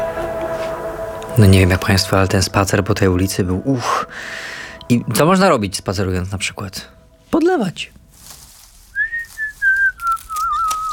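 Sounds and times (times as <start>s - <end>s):
speech: 1.4s - 8.0s
person whistling a short melodic tune: 9.0s - 10.9s.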